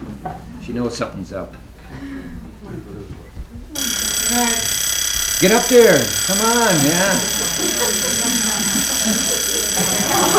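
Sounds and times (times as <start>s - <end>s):
laughter: 0.1s - 10.3s
speech: 0.2s - 4.8s, 5.4s - 10.3s
alarm ringing: 3.8s - 10.3s.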